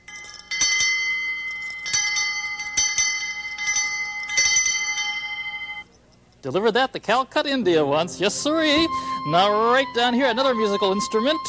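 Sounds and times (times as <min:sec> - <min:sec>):
metal elephant bell ringing: 0:00.0 - 0:05.9
speech: 0:06.4 - 0:11.4.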